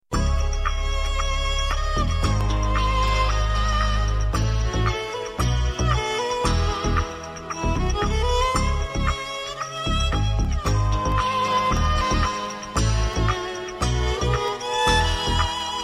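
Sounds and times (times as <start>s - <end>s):
lovely classical violin: 0.1s - 15.8s.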